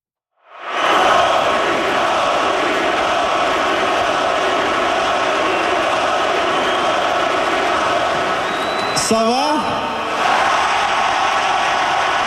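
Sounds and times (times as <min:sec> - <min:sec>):
big hockey arena crowd roaring and chanting: 0:00.5 - 0:09.0, 0:09.6 - 0:12.2
brief shrill whistle-like sweep: 0:08.4 - 0:09.1.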